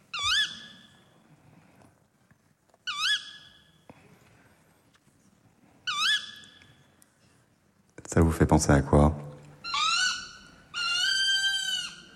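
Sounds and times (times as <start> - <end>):
tawny owl giving shrieking calls: 0.0 - 1.0, 2.8 - 3.7, 5.8 - 6.8, 9.6 - 12.1
speech: 8.1 - 9.2.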